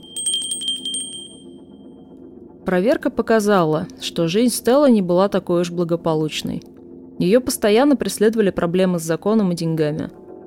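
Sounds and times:
small bell jingling on a handbag: 0:00.0 - 0:01.5
low steady hum: 0:00.0 - 0:01.9
speech: 0:02.7 - 0:10.2.

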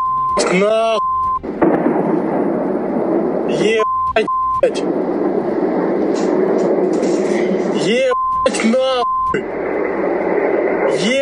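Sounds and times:
short electronic beep: 0:00.0 - 0:01.4, 0:03.8 - 0:04.7, 0:08.1 - 0:09.4
heavy sustained rumble and crackling roar after missile explosion: 0:00.4 - 0:11.2
speech: 0:00.5 - 0:01.1, 0:03.5 - 0:05.2, 0:06.1 - 0:09.9
powerful explosion from a night missile attack in Sevastopol: 0:01.4 - 0:11.2.

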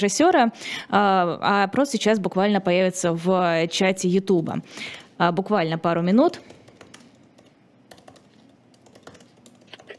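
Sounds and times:
speech: 0:00.0 - 0:06.6
typing on a computer keyboard: 0:06.3 - 0:09.9.

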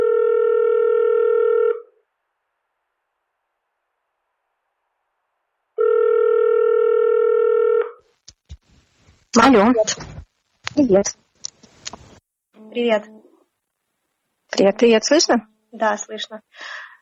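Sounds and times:
ringback tones on an outgoing phone call: 0:00.0 - 0:01.9, 0:05.8 - 0:08.0
speech: 0:09.4 - 0:10.2, 0:10.8 - 0:11.2, 0:12.8 - 0:13.2, 0:14.5 - 0:16.8.

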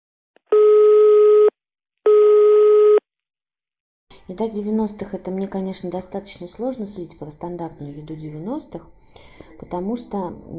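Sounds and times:
telephone busy signal through a phone line: 0:00.6 - 0:01.5, 0:02.1 - 0:03.0
speech: 0:04.3 - 0:10.5.

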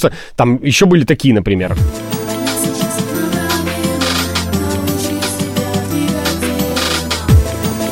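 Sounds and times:
speech: 0:00.0 - 0:02.2
upbeat dance pop track with female vocals from a cassette compilation: 0:01.9 - 0:07.9.

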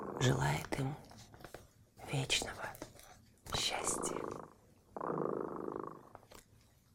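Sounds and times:
cat purring: 0:00.0 - 0:01.2, 0:03.5 - 0:06.5
speech: 0:00.2 - 0:01.2, 0:02.1 - 0:02.9.

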